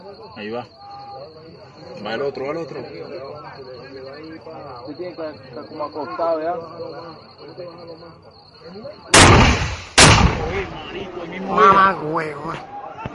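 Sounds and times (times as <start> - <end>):
speech: 0.2 - 0.8, 1.5 - 12.8
loud blasts of RPG and grenade launcher fire in combat: 9.1 - 11.3.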